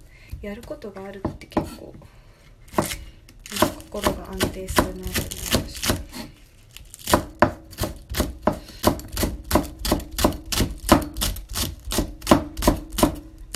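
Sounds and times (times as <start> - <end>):
speech: 0.4 - 2.2, 3.5 - 5.8
rapid knife chopping while mincing vegetables, maitake mushrooms and burdock: 2.7 - 6.3, 7.0 - 13.5.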